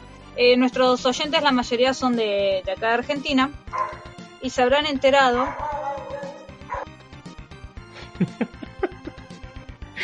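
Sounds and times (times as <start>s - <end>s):
speech: 0.4s - 5.7s
several dogs barking and yipping: 3.7s - 4.3s, 5.2s - 7.0s
laughter: 7.9s - 9.4s.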